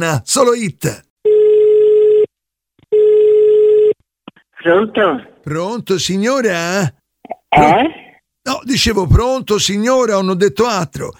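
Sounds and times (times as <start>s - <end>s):
speech: 0.0s - 1.1s, 4.6s - 11.1s
telephone ringing tones heard on the line: 1.2s - 2.3s, 2.9s - 4.0s.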